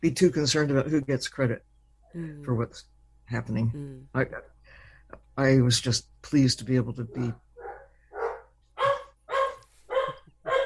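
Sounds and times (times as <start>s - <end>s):
speech: 0.0s - 4.5s, 5.1s - 7.4s
Chesapeake Bay Retriever, chocolate brown retriever and rescue dogs barking: 7.1s - 10.6s.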